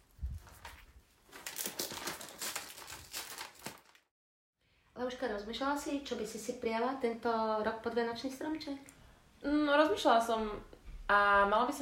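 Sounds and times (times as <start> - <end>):
paper crinkling while wrapping a gift with tape: 0.1 - 4.1
speech: 5.0 - 11.8.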